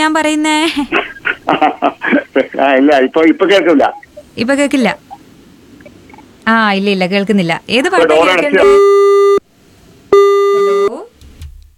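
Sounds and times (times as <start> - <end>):
speech: 0.0 - 5.1, 6.4 - 9.4
laughter: 0.7 - 2.8
busy tone beeps after a dropped phone call: 8.6 - 9.4, 10.1 - 11.0.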